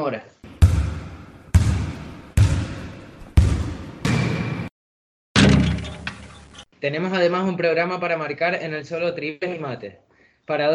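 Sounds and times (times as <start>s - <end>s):
speech: 0.0s - 0.4s, 6.8s - 10.7s
basketball bouncing on a court: 0.4s - 4.7s.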